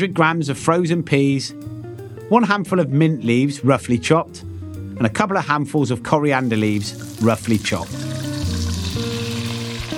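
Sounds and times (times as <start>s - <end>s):
speech: 0.0s - 8.1s
spices toasting in a deep frying pan over a medium heat: 6.4s - 9.9s.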